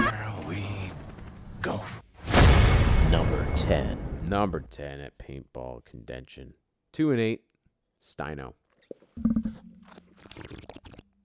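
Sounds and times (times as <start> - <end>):
speech: 1.6 - 2.0, 3.1 - 9.6
crackly mouth noises: 8.8 - 11.2
person sipping water: 8.8 - 11.2
wet gulps: 8.8 - 11.2.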